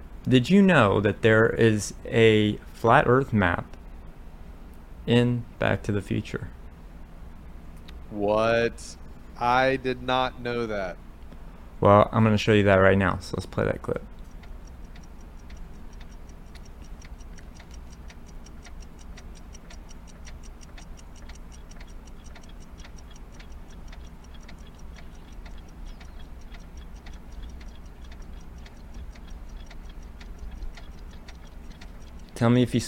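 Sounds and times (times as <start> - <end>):
low hum: 0.0 - 32.8
speech: 0.2 - 3.8, 5.0 - 6.6, 8.1 - 11.0, 11.8 - 14.1, 32.4 - 32.8
many clocks ticking: 14.1 - 32.8.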